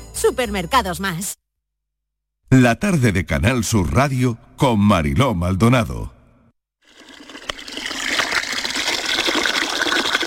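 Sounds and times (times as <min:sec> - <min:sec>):
speech: 0:00.2 - 0:01.4, 0:02.5 - 0:06.2
water gushing: 0:06.8 - 0:10.2.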